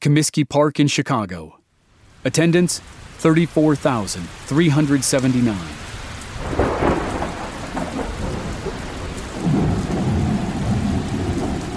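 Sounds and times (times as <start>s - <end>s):
speech: 0.0s - 1.6s, 2.2s - 6.0s
heavy rain downpour: 1.8s - 11.7s
deep rolls of thunder rumbling: 3.8s - 11.7s.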